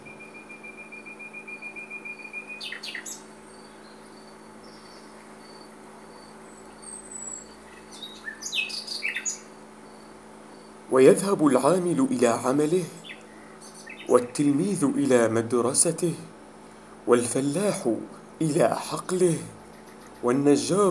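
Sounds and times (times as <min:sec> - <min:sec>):
long thin bird whistle: 0:00.0 - 0:04.0, 0:07.1 - 0:09.5
steady hum of insects: 0:00.0 - 0:20.9
birds chirping and calling outdoors at sunrise: 0:02.2 - 0:04.0, 0:07.3 - 0:09.5, 0:10.9 - 0:16.0, 0:17.1 - 0:20.9
speech: 0:10.9 - 0:13.0, 0:14.1 - 0:16.4, 0:17.0 - 0:19.6, 0:20.2 - 0:20.9.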